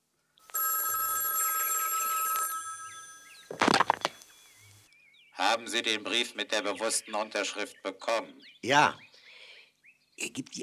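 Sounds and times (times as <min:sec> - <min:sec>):
telephone bell ringing: 0:00.5 - 0:04.4
speech: 0:05.6 - 0:09.1, 0:10.2 - 0:10.6.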